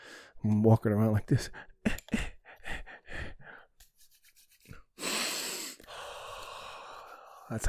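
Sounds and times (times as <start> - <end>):
speech: 0.4 - 2.2
person sniffing hand sanitizer up the nose: 4.1 - 7.5.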